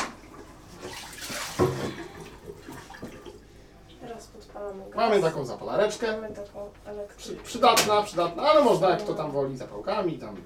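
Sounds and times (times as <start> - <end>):
water splash in a pot: 0.0 - 3.3
tap water pouring into a large pot for boiling potatoes: 0.8 - 3.4
speech: 4.7 - 10.4.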